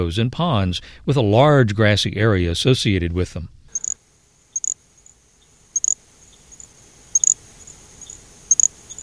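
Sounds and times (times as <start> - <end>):
speech: 0.0 - 3.6
faint hiss: 0.6 - 9.0
little grass frog giving high insect-like chirps: 3.7 - 9.0.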